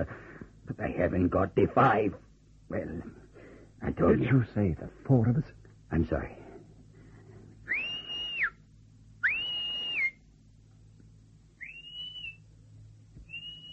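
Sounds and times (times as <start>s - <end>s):
speech: 0.0s - 3.2s, 3.8s - 6.4s
low steady hum: 0.0s - 13.7s
girl whistling high notes: 7.7s - 8.6s, 9.2s - 10.2s, 11.6s - 12.4s, 13.2s - 13.7s.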